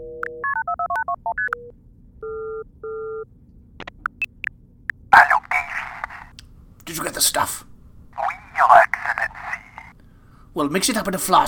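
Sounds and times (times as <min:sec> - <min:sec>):
telephone keypad dialing tones: 0:00.0 - 0:03.2
clicks: 0:03.8 - 0:06.5
speech: 0:07.2 - 0:07.7, 0:10.6 - 0:11.4.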